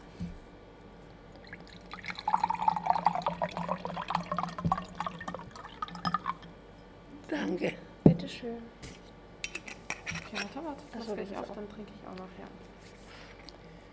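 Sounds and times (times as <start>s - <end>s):
water pouring into a glass: 1.4s - 6.5s
speech: 7.4s - 8.8s, 10.3s - 12.7s.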